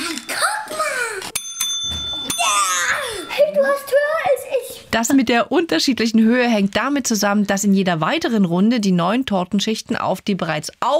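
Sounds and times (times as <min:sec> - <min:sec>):
hand slapping a game bell: 0:00.1 - 0:03.6
speech: 0:05.0 - 0:10.9.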